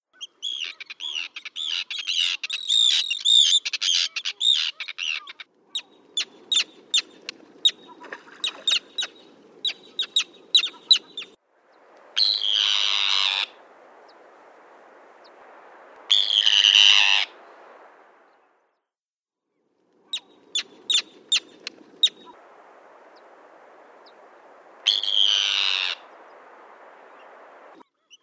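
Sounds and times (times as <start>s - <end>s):
Arctic tern calling: 0.1s - 17.9s, 20.0s - 28.2s.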